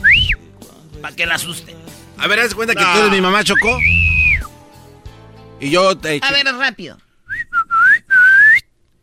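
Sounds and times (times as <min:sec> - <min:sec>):
loud human whistle: 0:00.0 - 0:00.4, 0:03.5 - 0:04.5, 0:07.3 - 0:08.7
speech: 0:01.0 - 0:04.0, 0:05.6 - 0:07.0.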